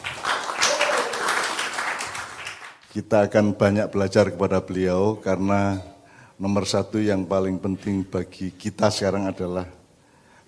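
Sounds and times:
audience applause welcoming a guest: 0:00.0 - 0:02.9
speech: 0:03.0 - 0:09.8.

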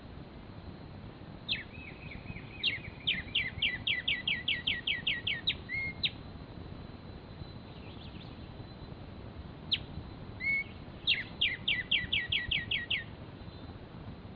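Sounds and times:
soft background hiss: 0:00.0 - 0:14.3
Black-striped sparrow Arremonops conirostris conirostris calling sharp downslurred notes: 0:01.5 - 0:06.2, 0:09.7 - 0:13.7.

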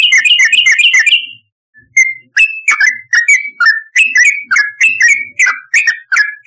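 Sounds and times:
yellow-vented bulbul singing: 0:00.0 - 0:06.4.

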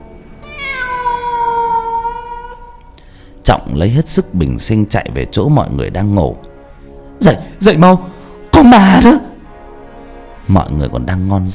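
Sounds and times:
cat meowing: 0:00.4 - 0:02.9
speech: 0:03.5 - 0:06.4, 0:07.2 - 0:09.3, 0:10.5 - 0:11.5.

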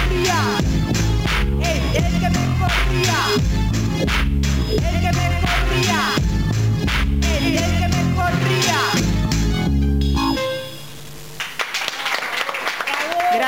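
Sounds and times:
loud live music: 0:00.0 - 0:11.0
audience applause: 0:11.4 - 0:13.4.

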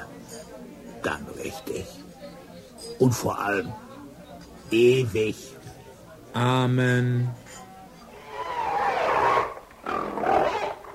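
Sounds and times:
speech: 0:01.0 - 0:02.1, 0:02.9 - 0:03.9, 0:04.7 - 0:05.6, 0:06.4 - 0:07.6
little pig squealing and grunting: 0:08.2 - 0:10.9.

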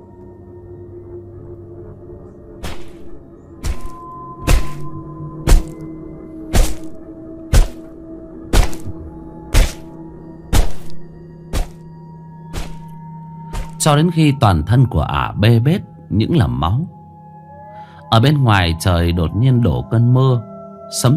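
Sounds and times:
heavy knife chopping: 0:02.6 - 0:03.0, 0:03.6 - 0:04.9, 0:05.5 - 0:05.8, 0:06.5 - 0:07.9, 0:08.5 - 0:08.9, 0:09.5 - 0:09.9, 0:10.5 - 0:11.8, 0:12.5 - 0:13.8
speech: 0:13.8 - 0:17.0, 0:18.1 - 0:21.1.

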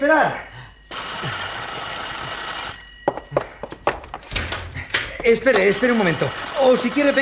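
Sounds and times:
speech: 0:00.0 - 0:00.6, 0:01.2 - 0:01.5, 0:05.2 - 0:07.1
telephone bell ringing: 0:00.7 - 0:04.2, 0:05.2 - 0:07.1.

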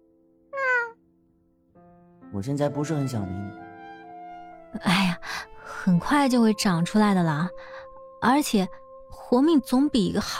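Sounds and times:
white cat meowing: 0:00.6 - 0:01.0
speech: 0:02.3 - 0:03.6, 0:04.7 - 0:05.2, 0:05.8 - 0:10.3.

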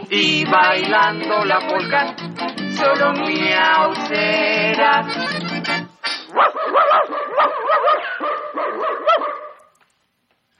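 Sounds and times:
speech: 0:00.1 - 0:05.6, 0:06.4 - 0:07.9
dogs barking on a children's story record: 0:06.3 - 0:09.8.

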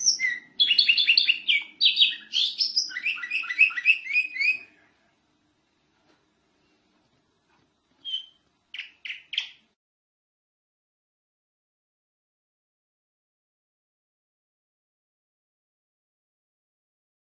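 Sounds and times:
champion-level singing canary song: 0:00.0 - 0:05.1, 0:08.0 - 0:09.8.

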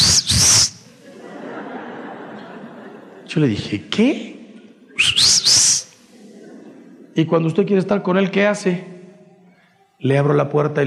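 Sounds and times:
husband whistling a two-part call: 0:00.0 - 0:00.9, 0:05.0 - 0:06.0
laughter: 0:00.0 - 0:08.4
speech: 0:03.4 - 0:04.4, 0:07.2 - 0:09.0, 0:10.0 - 0:10.8.

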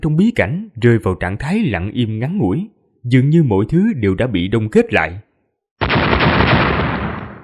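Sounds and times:
speech: 0:00.0 - 0:05.2
chain of explosions: 0:05.8 - 0:07.4.

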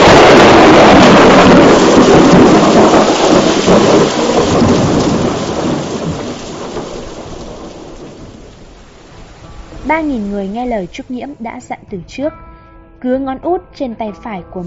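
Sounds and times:
loud crack of thunder in a storm: 0:00.0 - 0:11.4
heavy rain hammering down: 0:00.0 - 0:11.5
speech: 0:10.0 - 0:14.6.

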